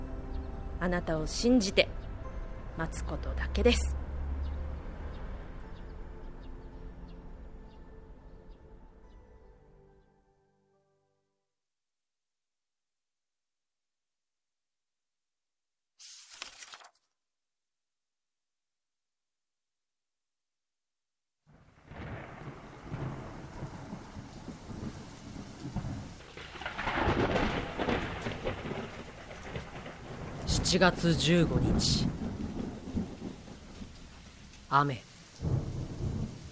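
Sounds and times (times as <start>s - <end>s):
speech: 0.8s - 2.0s, 2.8s - 4.0s, 30.7s - 32.2s, 34.7s - 35.1s
heavy continuous rain: 2.8s - 5.5s, 21.5s - 36.5s
brief crackle: 16.0s - 17.2s
thunder rumbling: 21.5s - 36.5s.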